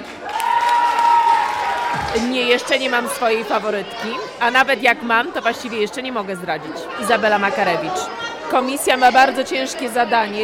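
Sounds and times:
audience applauding at a children's contest: 0.0s - 2.7s
speech: 2.1s - 10.4s.

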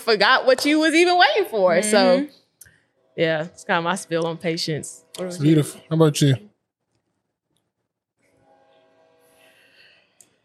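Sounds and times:
speech: 0.0s - 2.4s, 3.2s - 6.5s
harmonic horn-like train tones: 8.4s - 10.4s.

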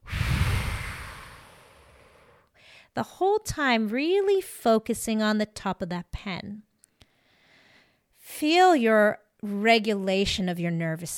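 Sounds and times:
full deep exhale through the mouth during a calming breathing exercise: 0.0s - 2.9s
speech: 3.0s - 6.7s, 8.3s - 11.1s.

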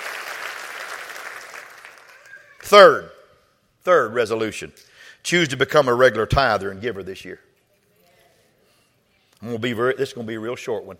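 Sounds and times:
audience applause: 0.0s - 2.6s
speech: 2.7s - 3.1s, 3.8s - 7.5s, 9.4s - 10.9s.

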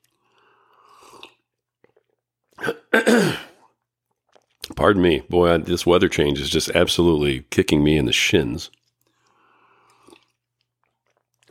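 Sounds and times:
person slurping hot coffee: 0.0s - 4.7s, 9.0s - 11.5s
person swallowing: 1.1s - 3.7s
speech: 4.8s - 8.8s.

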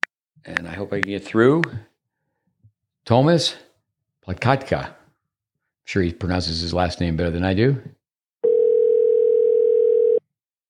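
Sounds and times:
speech: 0.4s - 1.9s, 3.1s - 3.7s, 4.3s - 5.0s, 5.9s - 8.0s
telephone dial tone while placing a call to Europe: 8.4s - 10.3s.

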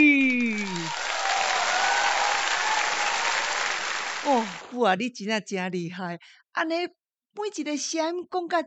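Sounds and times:
audience applause: 0.2s - 4.8s
speech: 4.8s - 8.6s.

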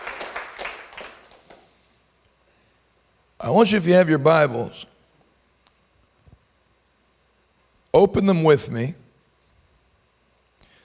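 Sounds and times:
crowd applauding in a large room: 0.0s - 1.6s
speech: 3.4s - 4.9s, 8.0s - 9.0s.

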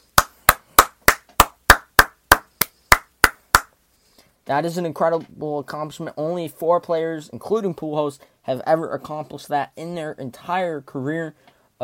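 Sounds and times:
single pair of hands clapping: 0.2s - 3.7s
speech: 4.5s - 11.8s.

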